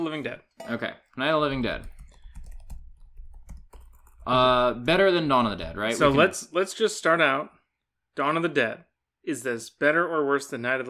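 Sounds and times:
speech: 0.0s - 2.0s, 4.2s - 7.6s, 8.2s - 10.8s
loud computer keyboard typing: 1.5s - 5.9s.

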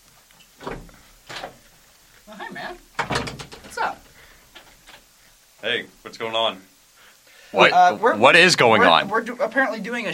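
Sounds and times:
door creaking: 0.4s - 1.6s, 2.7s - 4.0s
speech: 2.6s - 2.9s, 5.6s - 6.7s, 7.5s - 10.1s
door handle rattle: 3.0s - 3.8s.

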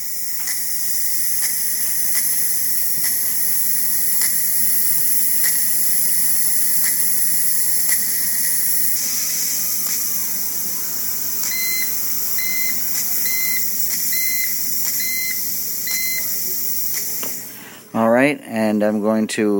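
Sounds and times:
pressure cooker hissing while pressurizing: 0.0s - 17.9s
speech: 18.3s - 19.5s.

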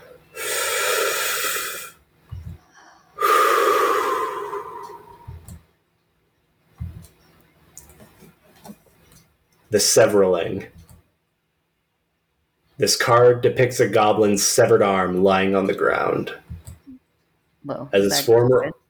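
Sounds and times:
deep breathing: 0.0s - 5.5s
speech: 9.7s - 10.8s, 12.8s - 16.4s, 17.7s - 18.7s.

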